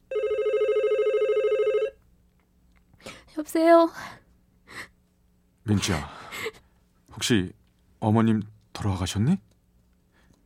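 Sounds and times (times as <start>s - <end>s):
telephone ringing with a warbling electronic tone: 0.0s - 2.0s
speech: 3.4s - 4.2s, 5.7s - 6.6s, 7.2s - 9.5s.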